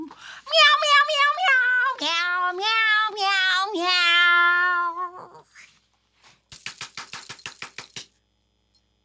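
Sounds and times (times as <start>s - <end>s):
cat meowing: 0.5s - 5.4s
people clapping: 6.5s - 8.1s.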